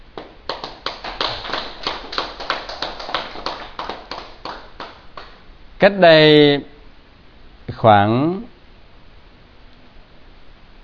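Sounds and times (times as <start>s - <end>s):
audience clapping: 0.1s - 5.5s
speech: 5.8s - 6.7s, 7.8s - 8.5s.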